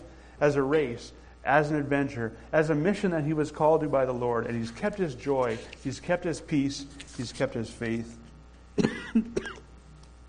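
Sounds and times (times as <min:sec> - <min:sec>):
speech: 0:00.4 - 0:08.2, 0:08.8 - 0:09.6
person coughing with a rough throat-clearing rasp: 0:08.8 - 0:09.7.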